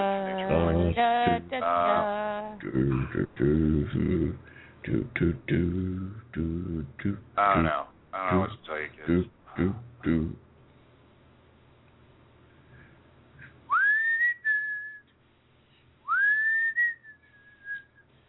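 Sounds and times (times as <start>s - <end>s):
speech: 0.5s - 10.4s
loud human whistling: 13.7s - 15.1s, 16.1s - 18.1s.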